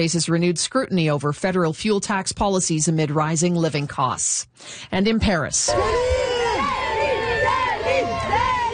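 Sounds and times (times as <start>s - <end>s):
speech: 0.0s - 6.4s
crowd of fans cheering and shrieking outside a hotel in Paris France: 5.7s - 8.7s.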